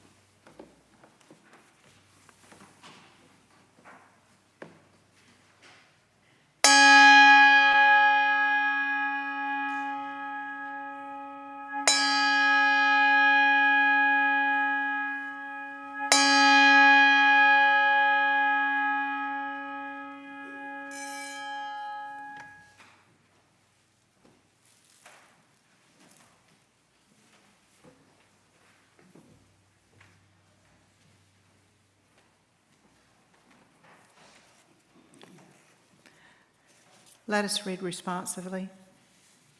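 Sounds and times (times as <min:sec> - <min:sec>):
metallic chime bell struck: 0:06.7 - 0:22.7
speech: 0:37.3 - 0:38.8.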